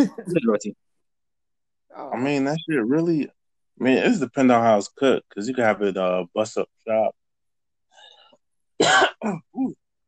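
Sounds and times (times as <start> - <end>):
speech: 0.0 - 0.9, 1.9 - 7.2, 8.8 - 9.8
throat clearing to shift phlegm: 8.8 - 9.8.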